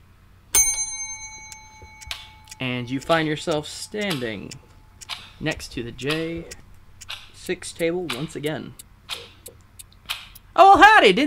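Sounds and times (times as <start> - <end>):
single bell ringing: 0.6 - 6.4
faint clicks and knocks: 1.4 - 10.6
speech: 2.6 - 4.7, 5.4 - 6.6, 7.4 - 8.8, 10.6 - 11.2.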